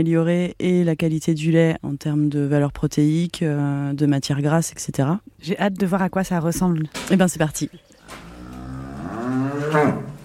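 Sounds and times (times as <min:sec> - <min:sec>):
speech: 0:00.0 - 0:08.3, 0:09.7 - 0:10.1
cow mooing: 0:08.0 - 0:10.2.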